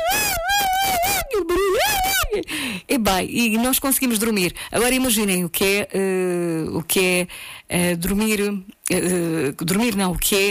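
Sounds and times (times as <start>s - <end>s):
child screaming at the beach: 0.0s - 2.4s
speech: 2.9s - 10.4s.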